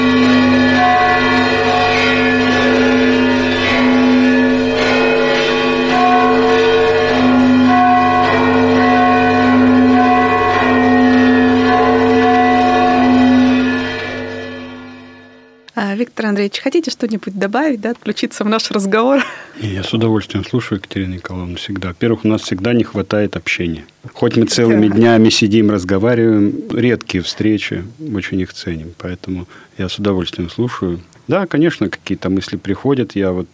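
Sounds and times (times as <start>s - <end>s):
church bell peal: 0.0s - 15.7s
speech: 16.4s - 33.5s.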